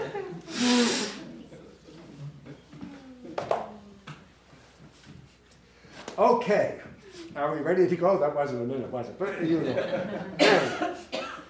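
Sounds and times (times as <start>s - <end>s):
laughter: 0.0s - 1.8s, 9.3s - 11.1s
strong noisy nose blow: 0.5s - 1.3s
speech: 6.2s - 11.2s.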